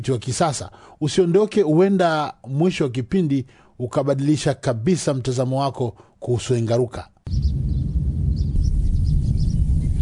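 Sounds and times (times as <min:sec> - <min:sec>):
speech: 0:00.0 - 0:07.8
faint high bird chirps: 0:07.3 - 0:10.0
low wind rumble outdoors in the Engaruka area: 0:07.3 - 0:10.0.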